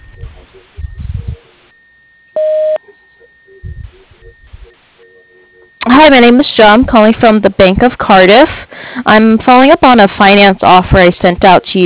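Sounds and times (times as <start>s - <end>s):
voicemail beep on a pharmacy answering line: 0.0s - 1.8s, 2.4s - 5.9s
quieter line noise: 0.0s - 11.8s
speech: 5.9s - 11.8s.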